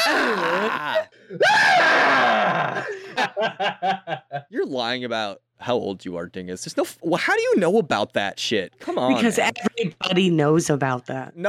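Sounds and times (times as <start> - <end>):
man imitating a politician's high-pitched rally scream: 0.0 - 3.0
speech: 0.3 - 1.8, 3.2 - 11.4
laughter: 2.2 - 4.7.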